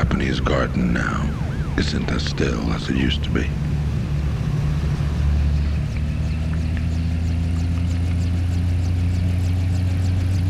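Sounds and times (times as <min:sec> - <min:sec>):
car engine humming while driving, heard from inside the vehicle: 0:00.0 - 0:10.4
road noise: 0:00.0 - 0:10.4
speech: 0:00.2 - 0:03.7.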